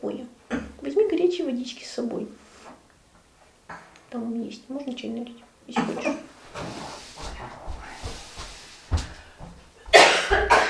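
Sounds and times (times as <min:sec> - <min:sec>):
speech: 0:00.0 - 0:00.3, 0:01.4 - 0:02.4, 0:04.4 - 0:06.8
people coughing while recording together: 0:09.9 - 0:10.6.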